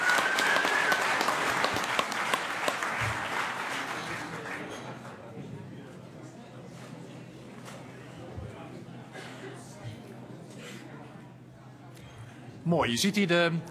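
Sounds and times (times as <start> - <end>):
room full of people applauding sworn-in council members: 0.0 - 5.2
low murmur of voices: 2.8 - 13.7
speech: 12.7 - 13.7.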